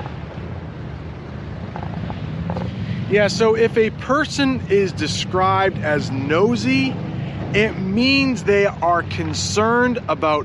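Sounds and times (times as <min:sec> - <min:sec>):
airplane flying overhead: 0:00.0 - 0:10.4
faint wind buffeting: 0:00.0 - 0:10.4
speech: 0:03.1 - 0:10.4.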